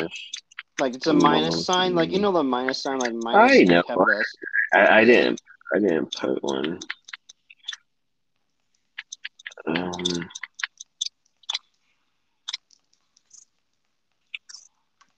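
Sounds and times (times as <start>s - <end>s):
speech: 0.0s - 7.0s, 9.7s - 10.4s
keyboard typing: 0.0s - 7.8s, 9.0s - 11.7s.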